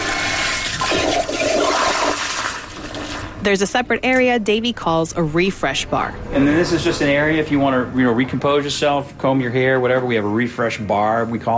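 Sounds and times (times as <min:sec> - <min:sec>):
motion sensor toilet flushing: 0:00.0 - 0:03.4
speech: 0:03.4 - 0:11.5.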